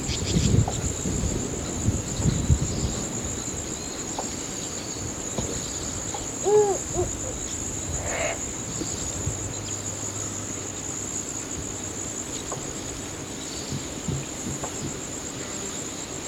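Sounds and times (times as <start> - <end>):
steady high insect whine: 0.0 - 16.2
Cape eagle-owl giving low hollow hooting notes: 6.1 - 8.4.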